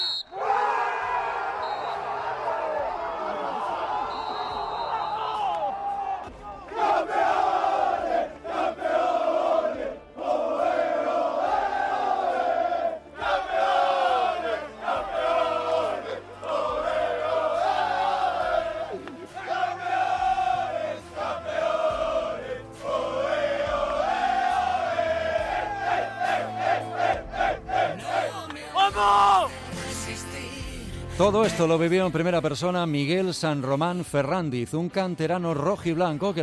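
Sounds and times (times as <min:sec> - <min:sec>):
packed stadium crowd roaring and chanting in celebration: 0:00.0 - 0:29.8
speech: 0:31.2 - 0:36.4.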